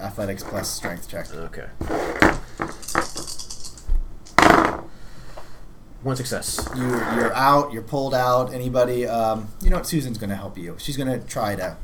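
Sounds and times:
speech: 0:00.0 - 0:03.0, 0:06.0 - 0:11.8
dice rolled for a tabletop role-playing game clattering on a hard tabletop: 0:01.8 - 0:04.9.

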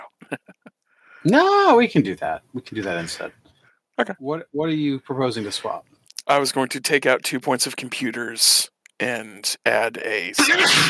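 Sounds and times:
speech: 0:00.3 - 0:00.6, 0:01.2 - 0:03.4, 0:04.0 - 0:10.8
sneeze: 0:10.4 - 0:10.8.

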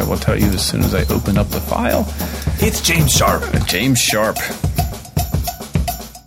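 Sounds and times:
deep thumping tribal-style drum hits: 0:00.0 - 0:03.9
bright clanking metallic strikes: 0:00.0 - 0:06.0
speech: 0:00.1 - 0:04.7.

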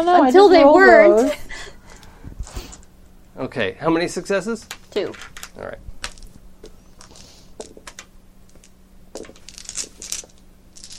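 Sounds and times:
speech: 0:00.0 - 0:01.4, 0:03.4 - 0:05.9
eight dice rolling during a tabletop game: 0:04.7 - 0:06.3, 0:07.0 - 0:10.9.

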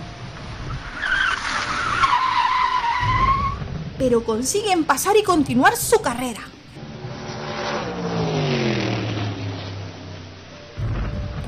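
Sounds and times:
car engine rumble: 0:00.0 - 0:11.4
road noise: 0:00.0 - 0:11.4
car tires squealing while skidding and spinning: 0:00.4 - 0:03.9, 0:06.8 - 0:11.4
speech: 0:04.0 - 0:06.6.

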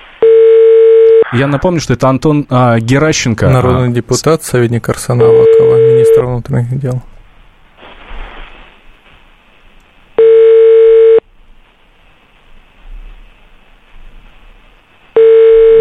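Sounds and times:
telephone ringback tones over a line: 0:00.2 - 0:01.2, 0:05.2 - 0:06.2, 0:10.2 - 0:11.2, 0:15.2 - 0:15.7
speech: 0:01.3 - 0:07.2
faint telephone line hiss: 0:06.2 - 0:15.7.

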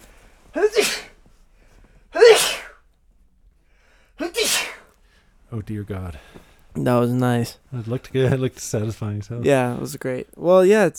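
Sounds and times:
person sneezing: 0:00.5 - 0:01.2, 0:02.1 - 0:02.9, 0:04.2 - 0:04.9
speech: 0:05.5 - 0:10.9.

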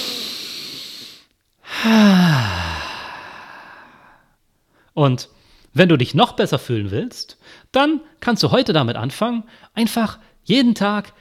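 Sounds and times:
long sighing exhale with a falling voiced tone: 0:00.0 - 0:04.3
deep breath in: 0:00.0 - 0:05.7
speech: 0:01.8 - 0:02.6, 0:05.0 - 0:11.1.

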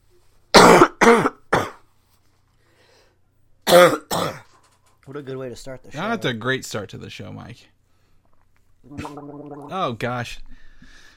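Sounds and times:
person coughing from choking on a cough drop: 0:00.6 - 0:01.8
speech: 0:05.2 - 0:07.8, 0:08.8 - 0:11.0.

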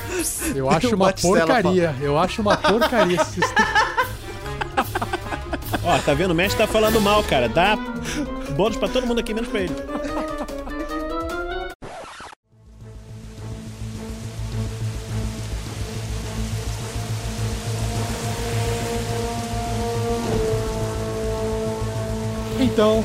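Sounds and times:
laughter: 0:00.0 - 0:07.0, 0:08.0 - 0:11.2
music: 0:00.0 - 0:11.8, 0:12.4 - 0:23.0
speech: 0:00.2 - 0:03.8, 0:05.8 - 0:10.2, 0:22.8 - 0:23.0
low sustained droning tones: 0:12.6 - 0:23.0
hailstorm with heavy rain pouring down: 0:13.0 - 0:23.0.

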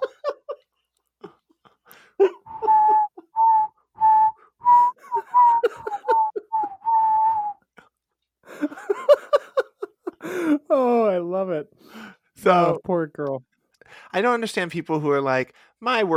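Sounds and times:
laughter: 0:00.0 - 0:03.3, 0:05.0 - 0:07.0, 0:08.5 - 0:10.6
person whistling notes: 0:02.2 - 0:07.6
speech: 0:12.4 - 0:13.5, 0:14.1 - 0:16.1.

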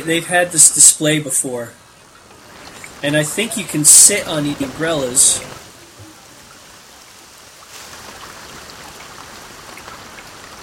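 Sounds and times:
speech: 0:00.0 - 0:01.8, 0:03.0 - 0:05.6
steady rain falling in a dense hissing wash of droplets: 0:00.0 - 0:10.6.

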